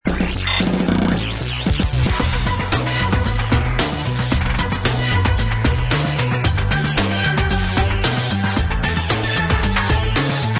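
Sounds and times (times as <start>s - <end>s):
game music: 0.0s - 10.5s.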